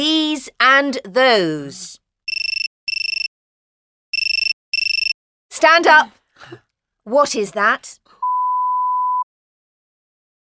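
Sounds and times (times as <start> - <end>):
speech: 0.0 - 2.0, 5.6 - 8.0
mobile phone beeping in a classroom: 2.3 - 3.3, 4.2 - 5.2, 8.2 - 9.3.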